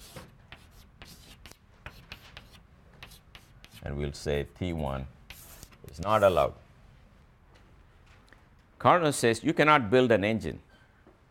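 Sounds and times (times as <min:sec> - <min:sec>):
drawing a figure by hand: 0:00.0 - 0:03.9, 0:05.3 - 0:06.5
speech: 0:03.8 - 0:05.2, 0:06.0 - 0:06.6, 0:08.8 - 0:10.7.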